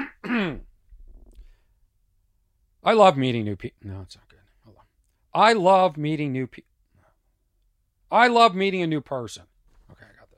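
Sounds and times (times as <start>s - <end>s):
person clearing throat: 0.0s - 0.7s
speech: 2.8s - 4.4s, 5.3s - 6.7s, 8.1s - 10.1s.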